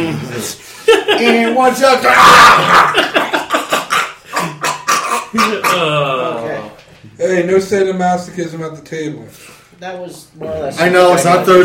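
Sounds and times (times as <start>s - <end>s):
speech: 0.1s - 3.2s, 5.3s - 6.5s, 7.2s - 11.6s
laughter: 0.3s - 6.1s
person imitating a dog barking: 2.0s - 3.0s, 3.7s - 6.4s.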